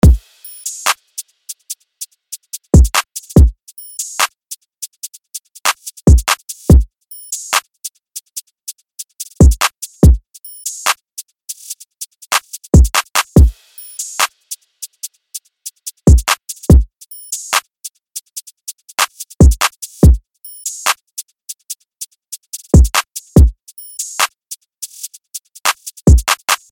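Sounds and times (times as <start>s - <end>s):
drill drum beat: 0.0s - 4.3s, 5.7s - 7.6s, 9.4s - 11.0s, 12.3s - 14.6s, 15.8s - 17.6s, 19.0s - 20.2s, 22.8s - 24.3s, 25.7s - 26.7s.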